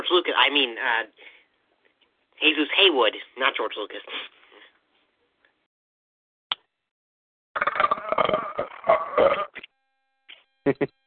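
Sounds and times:
speech: 0.1 - 1.4, 2.4 - 4.3, 10.6 - 11.0
drawn-out strained burp with gagging from person holding back vomiting: 7.6 - 9.6
brief laughter: 10.7 - 10.9.

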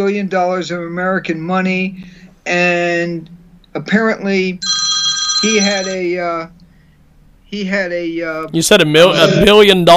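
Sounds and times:
speech: 0.0 - 4.8, 5.4 - 6.6, 7.5 - 9.9
telephone ringing with a warbling electronic tone: 4.6 - 6.2.

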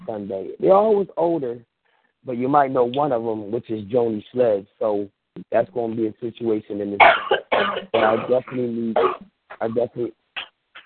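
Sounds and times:
speech: 0.1 - 10.2
person coughing on an unmuted call: 7.0 - 10.0.

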